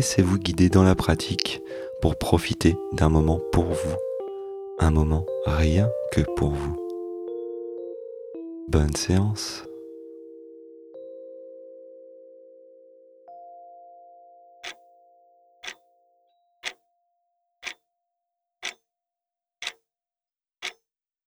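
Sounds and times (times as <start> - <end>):
speech: 0.0 - 4.1, 4.8 - 6.8, 8.7 - 9.7
clock ticking: 14.6 - 14.8.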